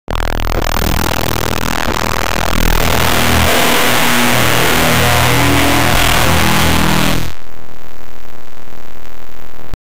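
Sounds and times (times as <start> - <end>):
glitch buzzing error sound: 0.0 - 7.6.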